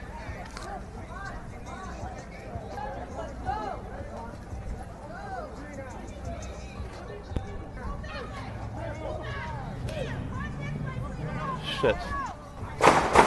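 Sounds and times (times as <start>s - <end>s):
murmur of crowd voices: 0.0s - 13.2s
street noise: 0.0s - 13.2s
gunshots: 12.8s - 13.2s.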